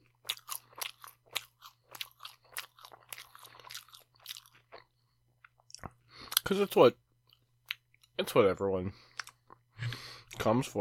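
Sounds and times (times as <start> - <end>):
crisp snack being chewed: 0.0 - 6.5
speech: 6.5 - 7.0, 8.4 - 9.1, 10.4 - 10.7.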